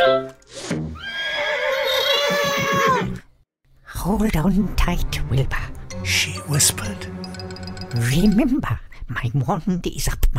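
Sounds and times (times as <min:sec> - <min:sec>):
speech: 0:00.7 - 0:01.0, 0:04.0 - 0:10.3
horse whinnying loudly: 0:01.0 - 0:03.2.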